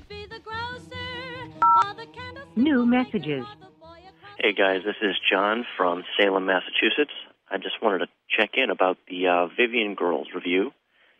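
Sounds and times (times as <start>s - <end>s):
melodic voice-like music: 0.0s - 5.3s
telephone keypad tone: 1.6s - 1.8s
speech: 2.6s - 3.6s, 4.4s - 10.8s.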